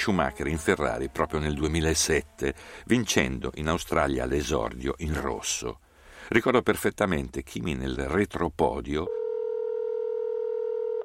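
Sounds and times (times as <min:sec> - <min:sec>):
speech: 0:00.0 - 0:09.2
steady electronic telephone tone: 0:09.1 - 0:11.0.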